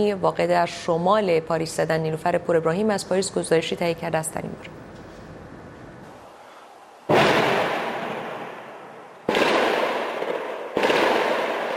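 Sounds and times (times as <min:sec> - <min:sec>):
speech: 0:00.0 - 0:04.8
explosions: 0:07.1 - 0:11.7
gunfire: 0:07.1 - 0:11.7
long rumbling echo: 0:07.1 - 0:11.7.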